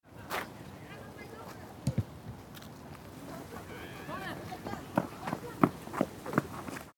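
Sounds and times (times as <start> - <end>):
youth football training game scene: 3.2 - 6.5.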